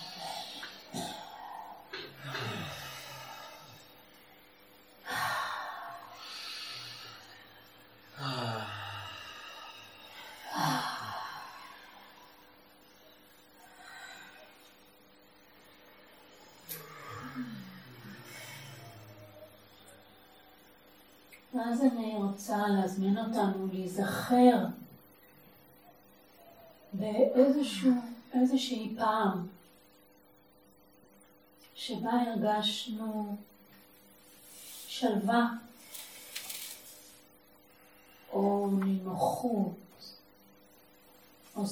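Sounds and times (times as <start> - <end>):
slow deep breaths drawn in and let out: 0.0 - 14.8, 16.1 - 20.9
speech: 21.6 - 24.8, 27.1 - 29.6, 31.8 - 33.5, 35.0 - 35.6, 38.4 - 39.8, 41.6 - 41.7.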